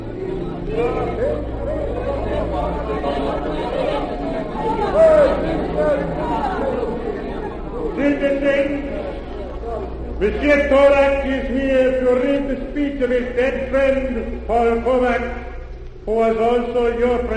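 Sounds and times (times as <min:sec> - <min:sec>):
people shouting in a crowd in a square: 0:00.0 - 0:08.2
laughter: 0:00.0 - 0:12.4
dense crowd chattering in an open public space: 0:00.0 - 0:17.3
speech: 0:00.7 - 0:01.7, 0:02.5 - 0:06.9, 0:09.8 - 0:17.3.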